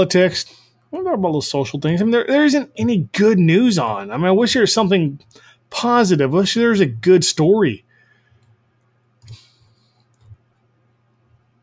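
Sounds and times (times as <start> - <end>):
speech: 0.0 - 7.8
steady low electrical hum: 0.0 - 11.6
quiet computer mouse clicks: 8.4 - 9.4, 10.0 - 10.6.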